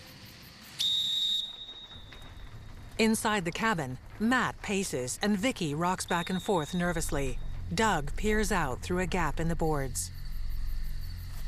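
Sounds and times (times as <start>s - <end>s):
whistle blast blown by someone standing on a path: 0.6s - 2.4s, 6.0s - 7.5s
speech: 3.0s - 10.2s.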